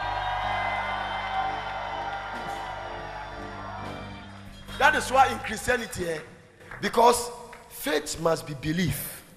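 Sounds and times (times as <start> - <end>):
audience shouting and cheering in praise: 0.0 - 5.8
speech: 4.8 - 9.1.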